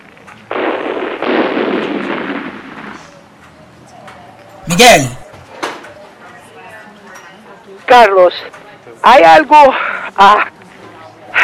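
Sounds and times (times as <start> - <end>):
loud explosions with roaring rumble: 0.5 - 2.8
speech: 4.8 - 5.2, 7.9 - 10.5.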